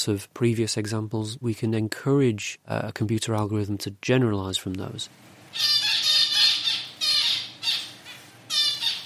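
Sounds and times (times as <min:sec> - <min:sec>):
speech: 0:00.0 - 0:05.8
female zebra finches calling in a university laboratory aviary: 0:05.5 - 0:09.0.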